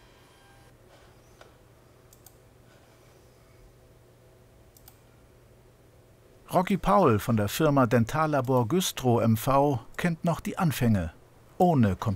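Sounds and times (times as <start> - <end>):
3D printer humming while printing a dental drill template: 0.0 - 1.6
sharp clicks: 4.7 - 5.0
speech: 6.5 - 12.1.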